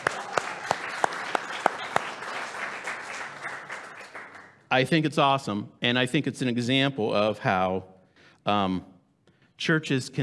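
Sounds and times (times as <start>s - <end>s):
audience applauding: 0.0s - 4.6s
speech: 4.7s - 8.9s, 9.6s - 10.2s.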